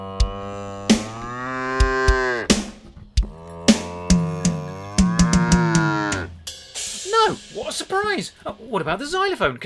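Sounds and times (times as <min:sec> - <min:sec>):
cow mooing: 0:00.0 - 0:06.4
sharp clicking knocks: 0:00.2 - 0:06.3
speech: 0:07.6 - 0:09.6.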